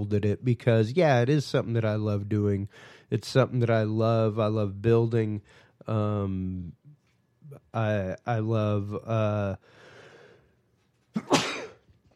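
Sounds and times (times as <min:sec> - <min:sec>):
speech: 0:00.0 - 0:06.8, 0:07.5 - 0:09.8
person sneezing: 0:11.1 - 0:11.8.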